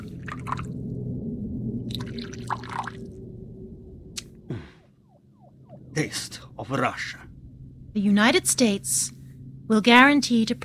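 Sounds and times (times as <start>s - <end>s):
vodka pouring from a bottle into a glass: 0.2s - 0.7s, 1.9s - 3.0s
speech: 6.0s - 7.3s, 8.0s - 10.6s.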